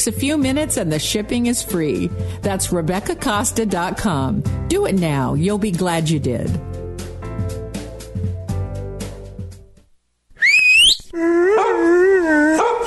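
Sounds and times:
speech: 0.0 - 6.8
dog howling: 10.4 - 12.8
dog barking: 11.6 - 11.9, 12.5 - 12.8.

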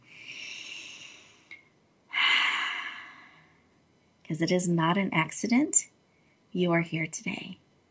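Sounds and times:
slow deep breath in: 0.0 - 3.5
speech: 4.3 - 5.9, 6.5 - 7.6.

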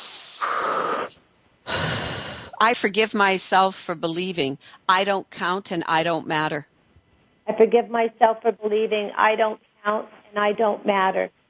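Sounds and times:
deep breathing during a guided relaxation exercise: 0.0 - 2.6
speech: 2.6 - 6.7, 7.5 - 11.4.

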